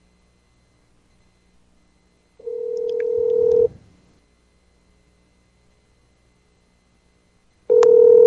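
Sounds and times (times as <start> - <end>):
electronic phone ringback tone over a phone line: 2.4 - 3.7, 7.7 - 8.2.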